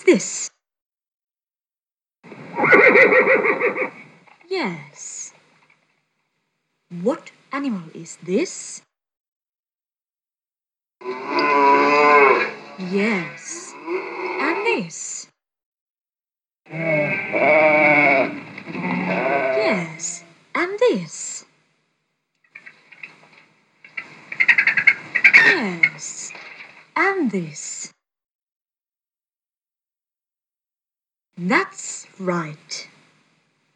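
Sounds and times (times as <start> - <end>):
speech: 0.1 - 0.5, 2.6 - 5.3, 6.9 - 8.9, 11.0 - 15.3, 16.7 - 17.7, 19.7 - 21.4, 25.5 - 26.2, 27.0 - 27.8, 31.4 - 32.9
horse neighing: 2.6 - 4.0, 16.7 - 19.6
cow mooing: 11.0 - 14.6, 16.7 - 19.7
lamb bleating: 16.7 - 19.7.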